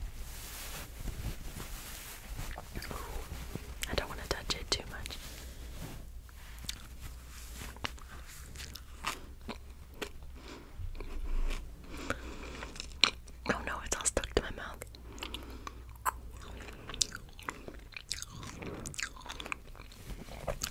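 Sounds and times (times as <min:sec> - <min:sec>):
low steady hum: 0:00.0 - 0:20.7
squishy mouth sounds of someone eating soft candy: 0:02.5 - 0:03.2, 0:06.6 - 0:07.0, 0:07.7 - 0:13.5, 0:14.8 - 0:20.7.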